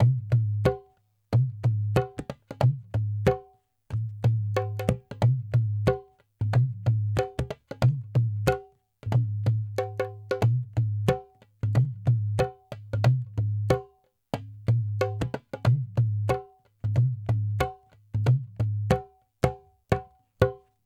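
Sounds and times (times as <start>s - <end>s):
dholak drum hip hop beat: 0.0s - 20.7s.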